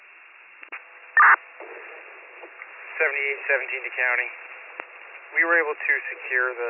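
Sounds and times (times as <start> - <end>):
steady fuzzy hum: 0.0 - 6.6
radio transmission static crackling: 0.6 - 6.6
burst of garbled radio transmission noise: 1.2 - 1.9
speech: 3.0 - 4.5, 5.3 - 6.6.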